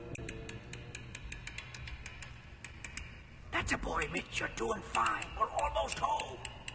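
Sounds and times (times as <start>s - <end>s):
amplified clicking of lock tumblers: 0.0s - 6.7s
speech: 3.7s - 6.6s.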